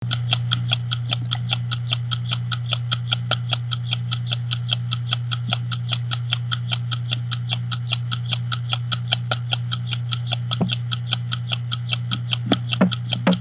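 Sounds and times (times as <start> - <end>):
cylinder escapement ticking: 0.0 - 13.3.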